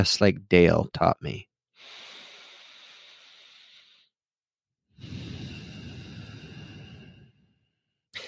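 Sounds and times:
speech: 0.0 - 2.0
slow deep breathing in and out: 1.8 - 4.2, 5.0 - 8.0.

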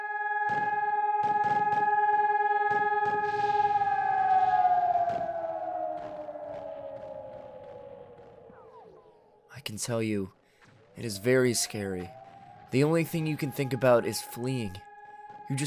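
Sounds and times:
air raid siren wailing: 0.0 - 9.5, 11.0 - 15.6
speech: 9.8 - 10.4, 11.0 - 14.9.

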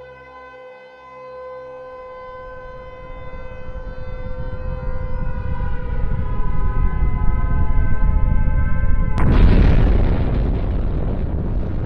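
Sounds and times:
air raid sirens wailing: 0.0 - 10.5
low rumbling noise: 2.7 - 11.8.

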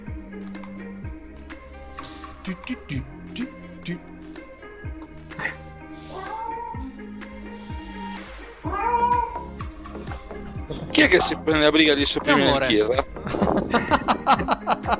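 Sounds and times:
speech: 2.5 - 4.2, 10.9 - 13.1
cat in heat caterwauling: 5.4 - 7.1, 7.9 - 9.7
laughter: 10.7 - 14.9.

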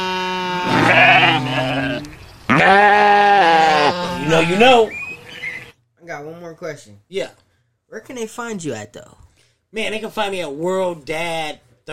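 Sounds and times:
sheep bleating: 0.0 - 4.8
speech: 4.4 - 5.0, 6.2 - 11.9.

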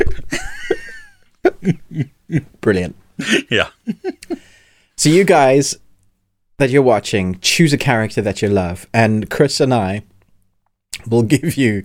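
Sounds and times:
speech: 1.6 - 4.2, 5.0 - 5.8, 6.6 - 10.1, 10.9 - 11.8
person imitating hiccups: 3.4 - 3.8.

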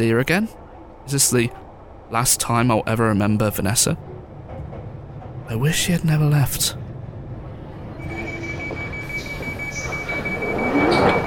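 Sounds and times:
speech: 0.0 - 4.2, 5.5 - 6.8
underground train rumbling on rails with a high whine: 0.6 - 11.2
underground train wheels squealing and grinding while braking: 7.9 - 11.2.

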